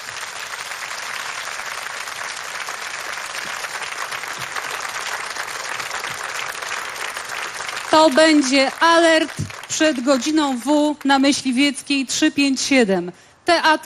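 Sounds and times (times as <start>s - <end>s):
audience applause at a live stage event: 0.0s - 11.0s
speech: 7.9s - 13.8s.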